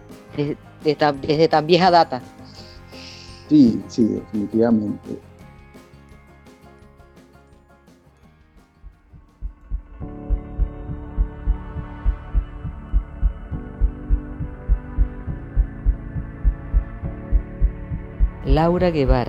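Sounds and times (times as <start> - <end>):
speech: 0.4 - 2.4, 3.5 - 5.3, 18.6 - 19.2
deep heartbeat thumping: 8.8 - 19.2
sustained humming musical drone: 9.4 - 19.2.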